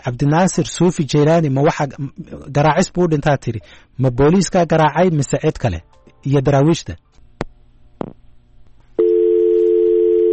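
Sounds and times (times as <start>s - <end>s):
speech: 0.0s - 7.0s
telephone dial tone after a call is cut off: 9.0s - 10.3s.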